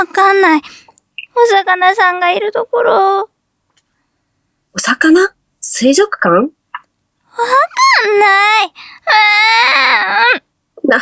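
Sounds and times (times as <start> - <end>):
speech: 0.0 - 0.8, 1.4 - 3.3, 4.8 - 6.6, 7.4 - 10.9
lost child crying: 7.4 - 10.4.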